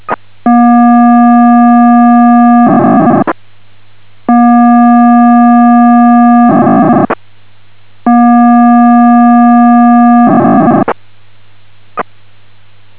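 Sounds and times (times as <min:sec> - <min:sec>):
POCSAG 512 pager signal on 39.5000 MHz: 0:00.5 - 0:03.4, 0:04.3 - 0:07.2, 0:08.1 - 0:11.0.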